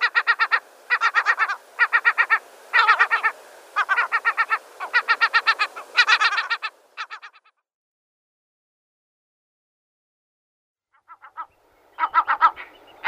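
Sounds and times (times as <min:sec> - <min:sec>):
lesser black-backed gull giving harsh laughing calls: 0:00.0 - 0:07.6, 0:11.1 - 0:13.0.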